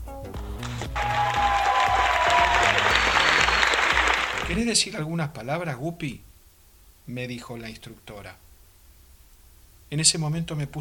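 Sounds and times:
crowd applauding: 0.4s - 4.6s
speech: 4.5s - 6.3s, 7.1s - 8.4s, 9.9s - 10.7s.

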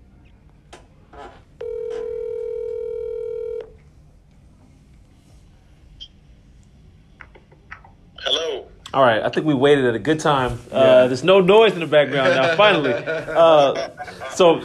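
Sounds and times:
low hum: 0.0s - 14.6s
telephone call line tone: 1.6s - 3.7s
speech: 9.0s - 14.6s
laughter: 11.8s - 14.6s.

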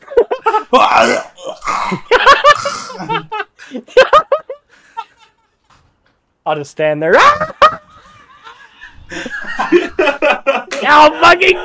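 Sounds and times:
speech: 0.7s - 1.3s, 6.5s - 7.5s, 10.9s - 11.6s
person imitating choking on birdseed: 0.7s - 3.3s
laughter: 1.8s - 5.8s, 7.2s - 11.6s.

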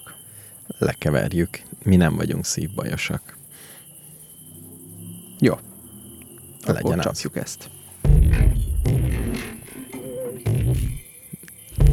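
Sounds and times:
speech: 0.8s - 3.4s, 5.4s - 5.7s, 6.6s - 7.8s
musical saw: 8.0s - 11.0s.

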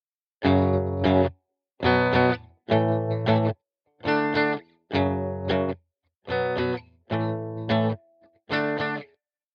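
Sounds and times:
distorted electric guitar striking power chords: 0.4s - 3.5s, 4.1s - 8.0s.

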